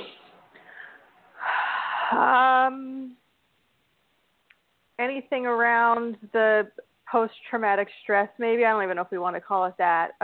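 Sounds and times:
deep inhalation ending in a sigh-like tone: 0:00.5 - 0:02.2
speech: 0:02.1 - 0:03.2, 0:05.0 - 0:10.2.

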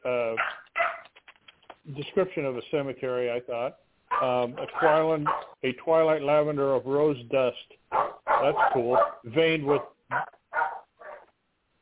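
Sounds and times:
dog barking in short, sharp bursts: 0:00.4 - 0:01.0, 0:04.1 - 0:05.6, 0:07.9 - 0:11.3
speech: 0:02.0 - 0:07.7, 0:08.4 - 0:09.9.

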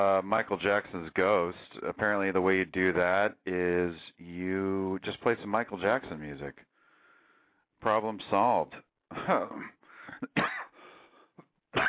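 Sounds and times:
speech: 0:00.0 - 0:06.7, 0:07.8 - 0:10.5
throat-clearing rasp: 0:09.1 - 0:10.7
person coughing harshly: 0:09.1 - 0:10.8.

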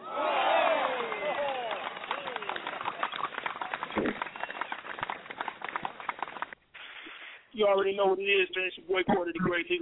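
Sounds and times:
crowd clapping: 0:00.0 - 0:06.6
speech: 0:07.6 - 0:09.8.

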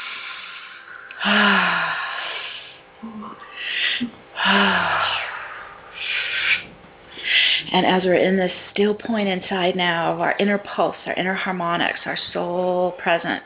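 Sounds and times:
deep inhale and exhale breathing: 0:00.0 - 0:07.9
speech: 0:07.8 - 0:13.4.

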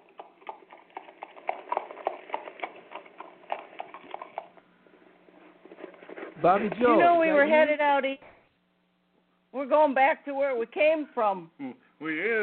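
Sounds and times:
horse hooves clip-clopping in a brisk rhythm: 0:00.0 - 0:06.9
speech: 0:06.4 - 0:08.3, 0:09.5 - 0:12.4.

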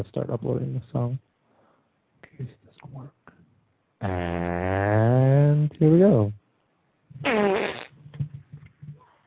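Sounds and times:
speech: 0:00.0 - 0:01.3, 0:02.3 - 0:03.2, 0:04.0 - 0:06.4, 0:07.2 - 0:07.8
long loud buzzing fart with sputtering bursts: 0:04.0 - 0:05.6, 0:07.2 - 0:08.2.

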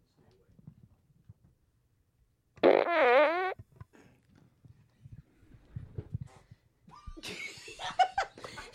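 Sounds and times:
fart: 0:02.6 - 0:03.6
people laughing: 0:06.9 - 0:08.7.

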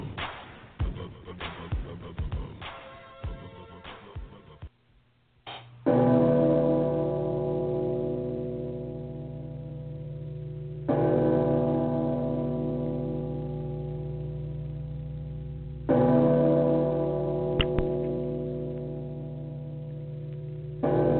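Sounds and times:
bells ringing: 0:05.8 - 0:21.1.

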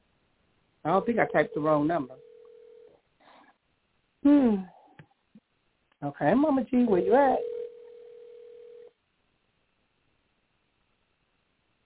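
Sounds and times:
quiet phone line hiss: 0:00.0 - 0:11.8
speech: 0:00.8 - 0:02.3, 0:04.2 - 0:04.8, 0:06.0 - 0:07.5
phone ringback tone over a phone line: 0:00.9 - 0:02.9, 0:06.9 - 0:08.9.

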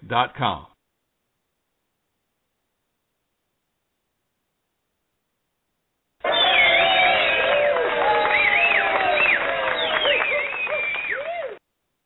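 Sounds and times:
speech: 0:00.1 - 0:00.7
crowd applauding: 0:06.2 - 0:11.6
crowd whistles and whoops: 0:06.2 - 0:11.6.

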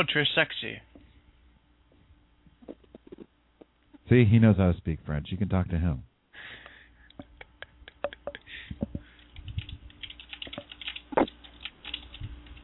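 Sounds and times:
speech: 0:00.0 - 0:00.9, 0:04.1 - 0:06.6
typing on a computer keyboard: 0:09.2 - 0:12.6.

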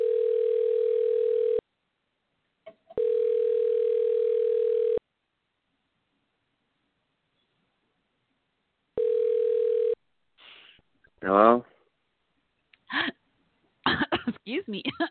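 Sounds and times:
telephone ringback tone on an outgoing call: 0:00.0 - 0:01.6, 0:03.0 - 0:05.0, 0:09.0 - 0:10.0
person coughing and choking on a drink: 0:13.9 - 0:14.4
speech: 0:14.6 - 0:15.0.

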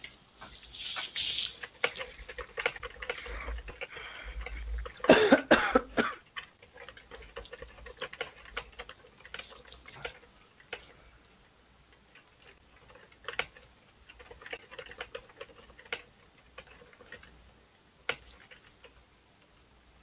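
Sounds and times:
faint typing on a computer keyboard: 0:00.9 - 0:05.1, 0:06.2 - 0:11.0, 0:12.0 - 0:17.4, 0:18.0 - 0:19.0.

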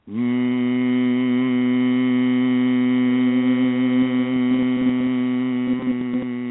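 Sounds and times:
person humming a long low note on an exhale: 0:00.0 - 0:06.4.

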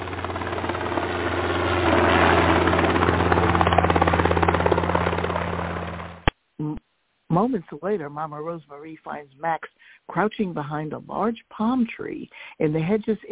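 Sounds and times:
helicopter low engine hum: 0:00.0 - 0:06.3
helicopter rotor thumping overhead: 0:00.0 - 0:06.3
speech: 0:07.4 - 0:13.3.

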